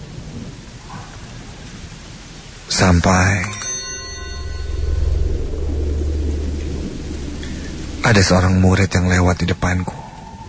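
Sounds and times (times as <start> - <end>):
steady rain pouring down at a school: 0.0 - 10.4
speech: 2.7 - 3.6, 8.1 - 10.0
deep low rumble: 3.5 - 9.8.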